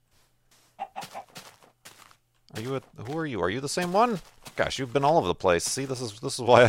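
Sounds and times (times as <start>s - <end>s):
chicken clucking: 0.7s - 1.7s
speech: 2.6s - 6.6s.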